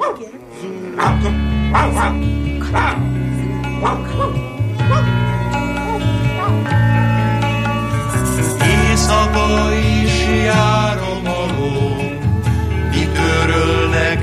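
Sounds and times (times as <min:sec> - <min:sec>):
family dog barking and yipping: 0:00.0 - 0:00.4, 0:01.0 - 0:03.0, 0:03.8 - 0:06.7
speech: 0:00.1 - 0:05.4, 0:09.0 - 0:11.0
steady sustained tonal background: 0:00.4 - 0:14.2.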